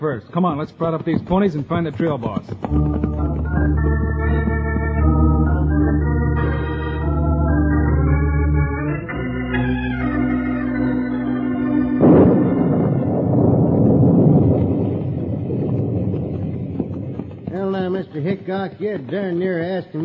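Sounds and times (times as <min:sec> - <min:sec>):
speech: 0:00.0 - 0:04.7, 0:18.2 - 0:20.0
thunder crash from lightning: 0:02.7 - 0:08.0, 0:10.4 - 0:18.8
sustained orchestral music passage: 0:02.7 - 0:13.6.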